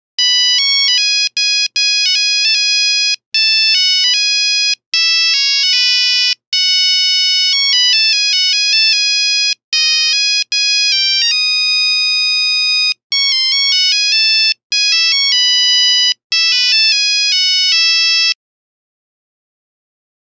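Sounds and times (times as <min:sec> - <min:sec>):
Nokia phone buzzer melody: 0:00.2 - 0:18.4.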